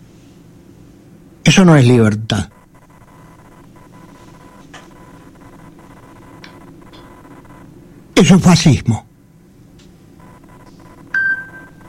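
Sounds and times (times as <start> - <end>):
low steady hum: 0.0 - 11.8
speech: 1.6 - 2.6, 8.2 - 9.1
telephone giving a bright electronic ring: 1.7 - 7.8, 10.2 - 11.8.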